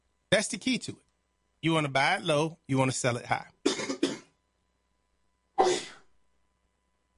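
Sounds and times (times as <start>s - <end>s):
speech: 0.3s - 3.5s
single sharp sneeze: 5.6s - 6.0s.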